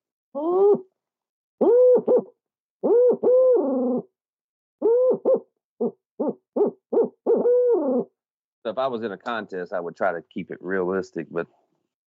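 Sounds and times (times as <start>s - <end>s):
man imitating owl hoots by mouth as a turkey-hunting locator call: 0.4s - 0.9s, 1.6s - 4.1s, 4.8s - 8.1s
speech: 0.4s - 0.9s, 8.7s - 11.6s.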